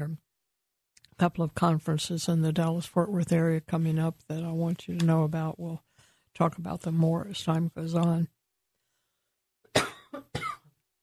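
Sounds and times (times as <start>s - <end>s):
speech: 1.2s - 8.4s
person coughing harshly: 9.7s - 10.7s.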